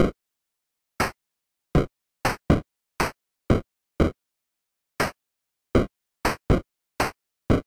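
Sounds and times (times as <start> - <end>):
drums: 1.8 - 4.1, 5.8 - 7.6.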